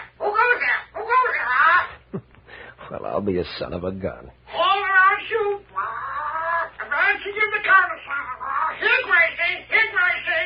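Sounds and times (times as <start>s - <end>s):
parrot squawking: 0.0s - 2.0s, 4.5s - 10.4s
speech: 3.0s - 4.4s.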